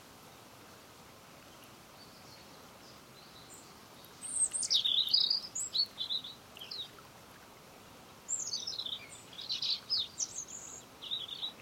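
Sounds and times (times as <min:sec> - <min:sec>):
European robin song: 0:01.5 - 0:07.0, 0:08.2 - 0:11.6.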